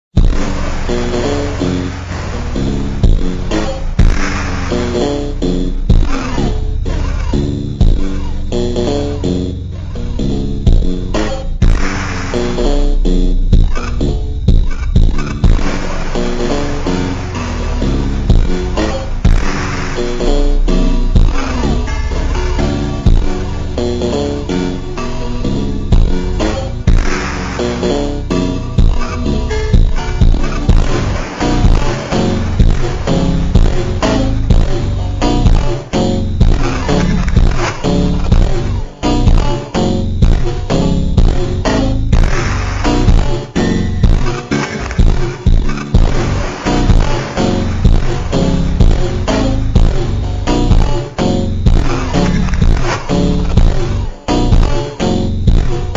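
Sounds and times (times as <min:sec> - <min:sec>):
ultra hyper mega slowed reverb phonk with bass: 0:00.0 - 0:55.9.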